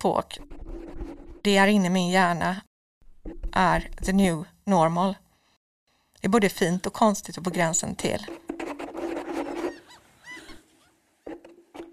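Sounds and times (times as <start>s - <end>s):
speech: 0.0s - 0.6s, 1.4s - 2.7s, 3.6s - 5.2s, 6.2s - 8.4s
seagulls calling: 9.5s - 11.0s.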